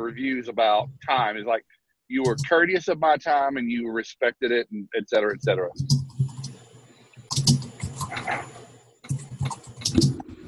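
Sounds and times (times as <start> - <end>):
speech: 0.0 - 6.0
typing on a computer keyboard: 2.2 - 2.5, 7.3 - 8.4, 9.0 - 10.4.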